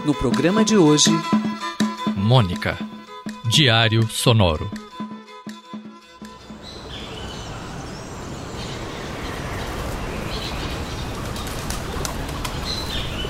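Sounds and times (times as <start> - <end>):
speech: 0.1 - 1.4, 2.3 - 2.9, 3.5 - 4.8
flock of pigeons flapping wings taking off on a pedestrian street on a foggy morning: 10.9 - 13.2.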